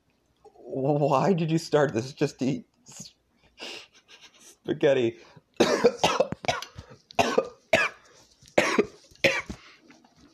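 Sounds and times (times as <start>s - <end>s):
speech: 0.7s - 3.1s, 4.7s - 6.1s
person choking coughing fit after meat stuck in throat: 5.6s - 8.0s, 8.6s - 9.6s.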